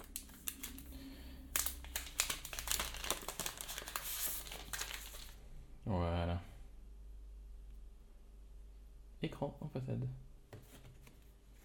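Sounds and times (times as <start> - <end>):
protective plastic film peeled off a new smartphone screen: 0.0 - 0.9, 1.5 - 5.4
speech: 9.2 - 10.3.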